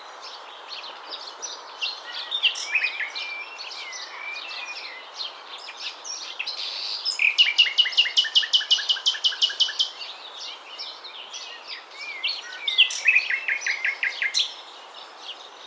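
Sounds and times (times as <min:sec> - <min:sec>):
common nightingale Luscinia megarhynchos singing varied phrases: 0:01.6 - 0:05.2, 0:06.2 - 0:10.0, 0:11.4 - 0:15.6.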